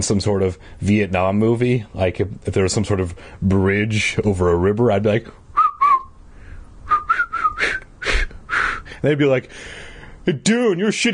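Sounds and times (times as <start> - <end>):
speech: 0.0 - 5.4, 9.0 - 11.1
person whistling a tune: 5.6 - 6.1, 6.9 - 8.8.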